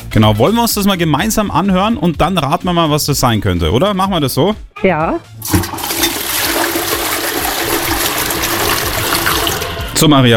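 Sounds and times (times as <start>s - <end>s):
speech: 0.1s - 5.9s, 10.0s - 10.3s
toilet flushing: 5.4s - 10.2s.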